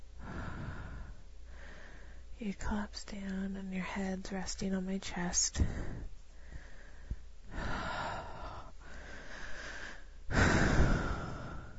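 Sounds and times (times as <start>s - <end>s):
heavy breathing from two people catching their breath: 0.2s - 2.3s, 5.6s - 11.7s
speech: 2.4s - 6.1s.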